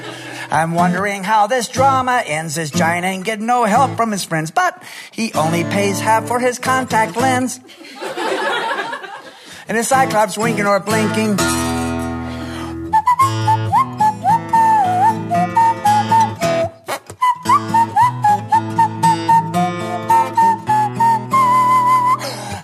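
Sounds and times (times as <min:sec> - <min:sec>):
laughter: 0:00.0 - 0:00.5, 0:07.6 - 0:09.5
speech: 0:00.5 - 0:08.7, 0:09.7 - 0:11.7
whistled melody as instrumental verse: 0:11.4 - 0:22.6.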